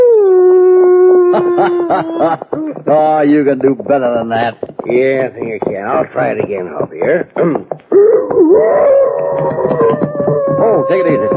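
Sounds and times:
person imitating a coyote howl: 0:00.0 - 0:02.9, 0:07.9 - 0:11.3
laughter: 0:01.2 - 0:04.2
speech: 0:01.6 - 0:10.0, 0:10.6 - 0:11.3.

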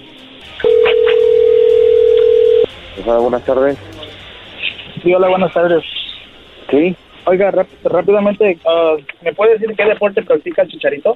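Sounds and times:
telephone tone as a call is placed: 0:00.6 - 0:02.7
speech: 0:03.0 - 0:03.9, 0:05.0 - 0:05.9, 0:06.7 - 0:11.1.

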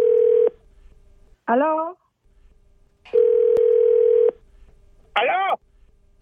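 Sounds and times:
telephone ringing tone during a call: 0:00.0 - 0:00.5, 0:03.1 - 0:04.4
speech: 0:01.5 - 0:02.0.

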